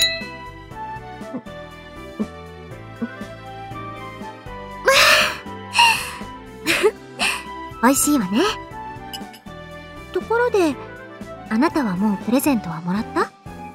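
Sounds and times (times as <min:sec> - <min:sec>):
glasses clinking in a toast: 0:00.0 - 0:00.5, 0:09.1 - 0:09.5
soft music: 0:00.0 - 0:13.7
speech: 0:01.3 - 0:01.6, 0:07.8 - 0:08.6, 0:10.4 - 0:10.9, 0:11.5 - 0:13.3.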